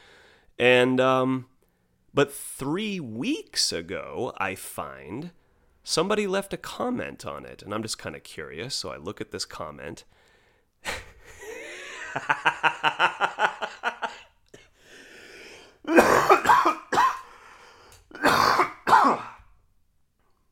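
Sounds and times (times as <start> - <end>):
speech: 0.6 - 1.5, 2.1 - 10.2, 10.8 - 11.0, 12.2 - 13.2
laughter: 11.3 - 14.2
harsh coughs: 15.9 - 17.3, 18.1 - 19.5
loud throat clearing: 18.1 - 19.5.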